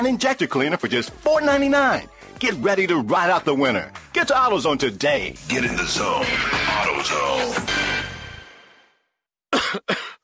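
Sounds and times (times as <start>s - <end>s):
speech: 0.0s - 8.0s, 9.7s - 10.1s
person coughing: 9.5s - 10.2s.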